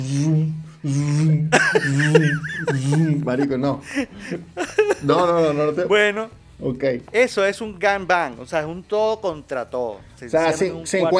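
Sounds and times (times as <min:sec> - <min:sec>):
voice imitating a lightsaber's droning hum: 0:00.0 - 0:03.3
speech: 0:00.0 - 0:11.1
laughter: 0:01.5 - 0:05.4.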